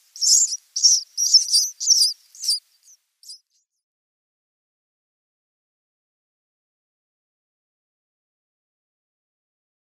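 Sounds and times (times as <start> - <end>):
House sparrow nestlings begging: 0.2 - 3.4.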